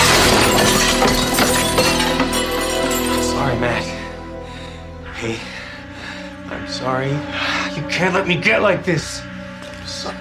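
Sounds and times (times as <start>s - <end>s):
glass coffee table shattering: 0.0s - 3.4s
breaking and tinkling glass shards: 0.0s - 3.6s
speech: 6.8s - 7.4s, 8.0s - 9.3s.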